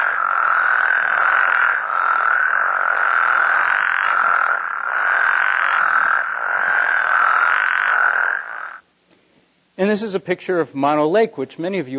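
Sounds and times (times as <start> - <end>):
dense chorus of frogs croaking: 0.0 - 8.9
speech: 9.8 - 11.9.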